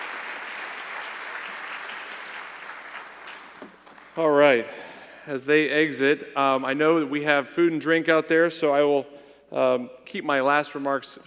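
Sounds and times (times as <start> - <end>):
audience applause for panelists at a Chamber of Commerce event: 0.0 - 4.2
speech: 3.6 - 11.2.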